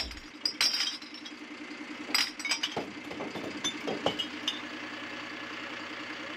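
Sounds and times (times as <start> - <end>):
glass bottles clinking while sorted by colour into truck compartments: 0.0 - 1.4, 2.1 - 4.7
household recycling collection truck idling: 0.0 - 6.3.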